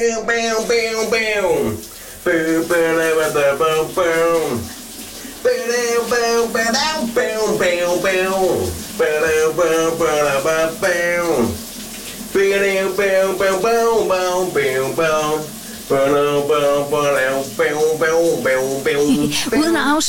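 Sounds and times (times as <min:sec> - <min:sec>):
speech: 0:00.0 - 0:04.8, 0:12.5 - 0:20.0
running shower water hissing: 0:00.3 - 0:20.0
man singing a summer hit in the shower: 0:18.9 - 0:20.0.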